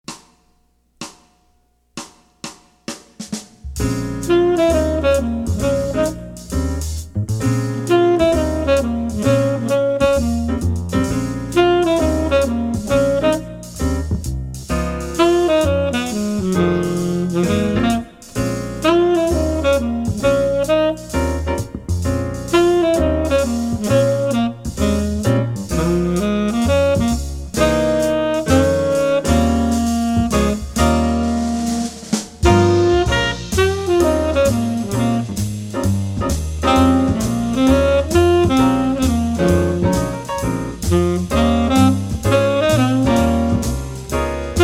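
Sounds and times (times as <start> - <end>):
swing trumpet: 3.2 - 44.6.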